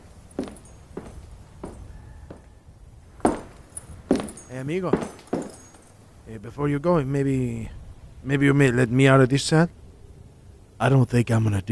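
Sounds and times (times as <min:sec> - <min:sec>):
soft footsteps: 0:00.0 - 0:02.5, 0:03.1 - 0:06.2
speech: 0:04.5 - 0:05.2, 0:06.3 - 0:09.8, 0:10.8 - 0:11.7.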